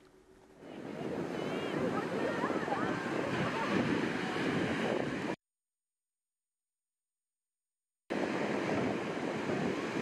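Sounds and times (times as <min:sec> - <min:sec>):
gusting wind noise: 0:00.0 - 0:05.4, 0:08.1 - 0:10.0
ocean surf roaring at Seabright State Beach in Santa Cruz California: 0:00.6 - 0:05.4, 0:08.1 - 0:10.0.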